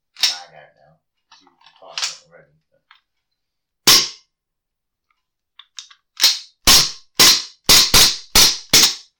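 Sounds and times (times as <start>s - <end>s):
gas blowback airsoft pistol fired: 3.9s - 4.2s, 6.2s - 9.1s.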